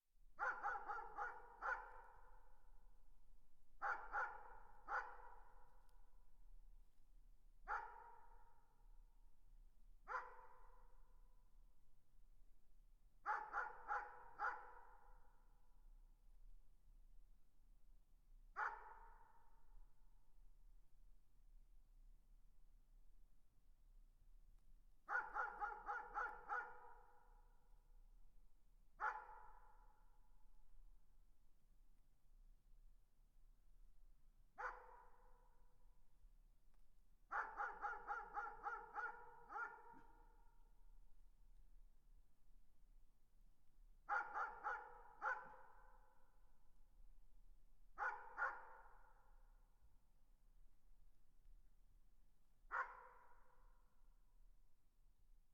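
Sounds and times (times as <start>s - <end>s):
distant dog barking: 0.4s - 2.3s, 3.8s - 5.5s, 7.7s - 8.3s, 10.1s - 10.7s, 13.3s - 15.0s, 18.6s - 19.3s, 25.1s - 27.1s, 29.0s - 29.7s, 34.6s - 35.3s, 37.3s - 40.4s, 44.1s - 45.9s, 48.0s - 49.1s, 52.7s - 53.2s.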